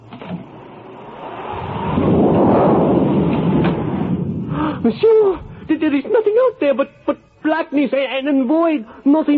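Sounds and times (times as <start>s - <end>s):
deep rolling thunder in a storm: 1.4s - 5.8s
speech: 4.8s - 9.3s.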